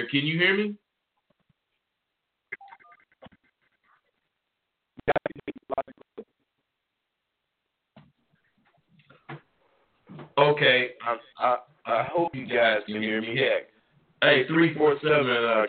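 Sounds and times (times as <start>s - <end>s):
speech: 0.0s - 0.8s, 10.4s - 15.6s
touch-tone dialing of a telephone number: 2.6s - 3.1s.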